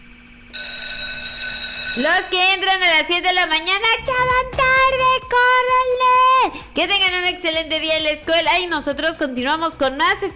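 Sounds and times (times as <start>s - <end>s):
alarm sound effect with bright electronic ringing: 0.5s - 3.6s
speech: 2.0s - 10.3s.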